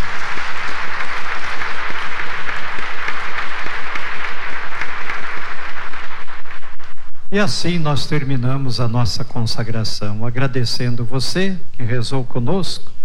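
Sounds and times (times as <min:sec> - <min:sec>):
audience applauding: 0:00.0 - 0:07.1
speech: 0:07.3 - 0:12.9.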